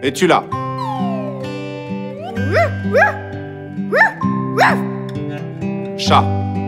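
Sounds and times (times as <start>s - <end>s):
speech: 0.0s - 1.1s, 2.4s - 3.2s, 3.8s - 4.9s, 6.0s - 6.4s
dog yelping: 0.8s - 4.9s.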